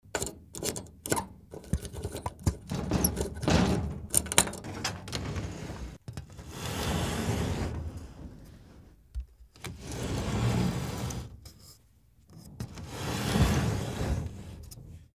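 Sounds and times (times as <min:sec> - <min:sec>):
key: 0:00.0 - 0:03.5, 0:04.1 - 0:04.6
window: 0:00.0 - 0:11.6, 0:12.3 - 0:15.1.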